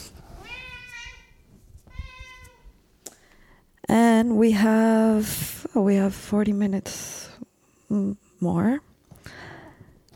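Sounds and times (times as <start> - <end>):
cat having zoomies meowing: 0.4 - 2.8
speech: 3.9 - 7.2, 7.9 - 8.9.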